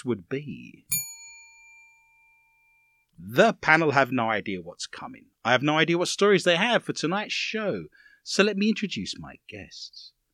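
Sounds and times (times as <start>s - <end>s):
speech: 0.0s - 1.0s, 3.2s - 10.2s
bell ding: 0.9s - 3.0s.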